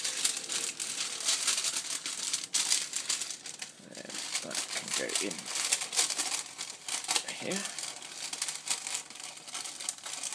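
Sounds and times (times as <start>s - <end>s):
crinkling and rustling as something is folded up to fit into a space: 0.0s - 10.3s
speech: 5.0s - 5.6s, 7.4s - 7.8s.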